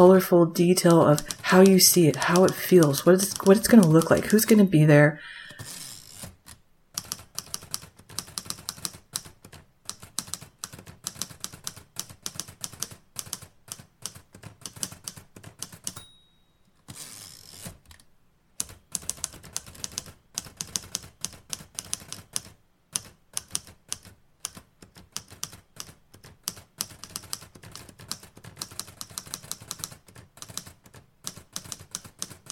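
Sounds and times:
keyboard typing: 0:00.0 - 0:04.8, 0:05.4 - 0:16.0, 0:18.6 - 0:32.4
speech: 0:00.0 - 0:05.8.

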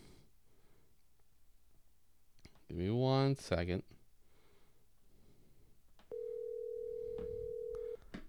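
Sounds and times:
speech: 0:02.7 - 0:04.0
phone line dial tone after a call hung up: 0:06.1 - 0:08.0.

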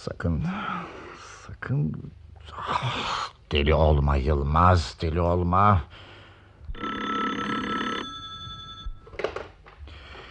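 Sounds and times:
speech: 0:00.0 - 0:06.1, 0:06.8 - 0:07.2
telephone electric bell ringing: 0:06.8 - 0:09.1.

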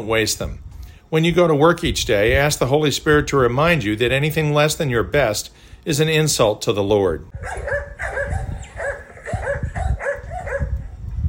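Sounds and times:
speech: 0:00.0 - 0:08.1
Harlequin Great Danes barking with deep resonant woofs: 0:07.3 - 0:11.2.

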